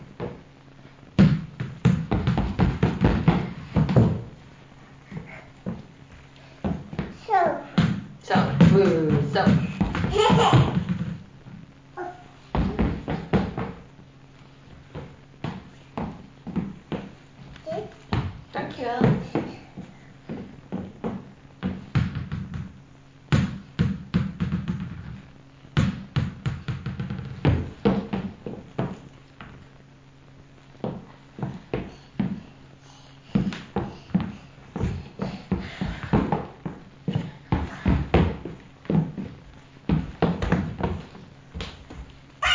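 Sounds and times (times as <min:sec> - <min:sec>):
ball bouncing on a hard floor: 0:00.2 - 0:00.4, 0:01.2 - 0:04.4, 0:05.1 - 0:11.6, 0:12.5 - 0:13.9, 0:14.7 - 0:29.6, 0:30.8 - 0:32.4, 0:33.3 - 0:42.5
child's voice: 0:07.2 - 0:07.8, 0:17.7 - 0:18.0
speech: 0:08.8 - 0:09.6.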